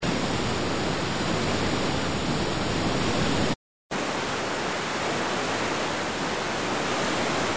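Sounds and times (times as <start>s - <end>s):
waterfall on a torrent: 0.0s - 7.5s.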